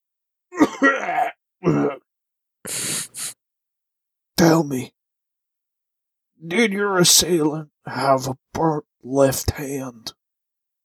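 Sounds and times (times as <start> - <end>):
grandfather clearing his throat with gravelly rasps: 0.5 - 2.0
grandfather coughing short breathy coughs: 0.6 - 2.0
speech: 1.6 - 2.0, 4.4 - 5.0, 6.4 - 10.2.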